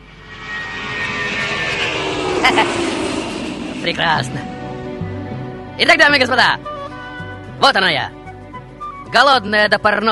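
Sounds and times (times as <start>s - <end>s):
airplane taking off with engine roar: 0.0s - 8.5s
speech: 2.4s - 2.9s, 3.9s - 4.5s, 5.8s - 6.7s, 7.6s - 8.2s, 9.1s - 10.1s.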